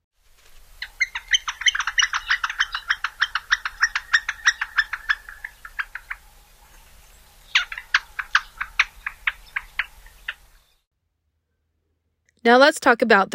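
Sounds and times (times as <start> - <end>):
Northern Flicker soft wicka wicka wick call: 0.4 - 10.8
speech: 12.4 - 13.3.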